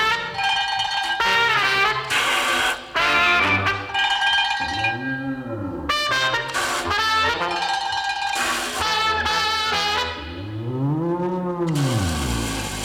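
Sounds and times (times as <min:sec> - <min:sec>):
clanging bell for round two of a bullfight: 0:00.1 - 0:09.7
cow making drawn-out swooping moo-like calls: 0:04.5 - 0:06.5, 0:09.1 - 0:12.8.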